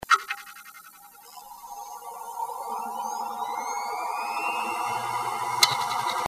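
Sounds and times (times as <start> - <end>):
hard disk drive noise: 0.0 - 6.2.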